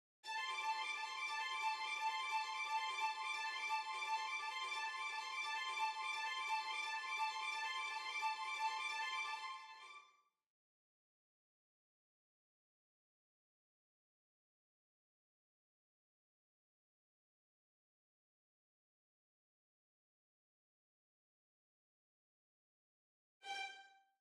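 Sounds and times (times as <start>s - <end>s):
violins: 0.3s - 10.0s, 23.4s - 24.0s.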